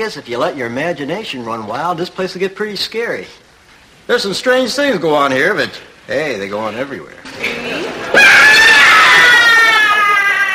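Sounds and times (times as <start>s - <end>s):
speech: 0.0s - 3.4s, 4.1s - 7.5s
hairy monster creature screaming in a long wavering howl: 8.1s - 10.5s.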